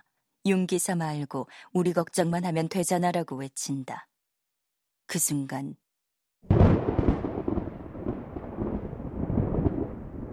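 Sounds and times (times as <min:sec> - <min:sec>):
speech: 0:00.4 - 0:04.1, 0:05.1 - 0:05.8
steady rain during a storm: 0:06.5 - 0:10.3
thunder crack and rumble during a storm: 0:06.5 - 0:10.3.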